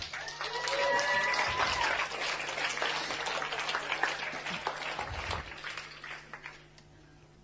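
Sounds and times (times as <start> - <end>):
whistles and cheers: 0.0 - 2.2
audience applauding to welcome a guest: 0.0 - 6.7.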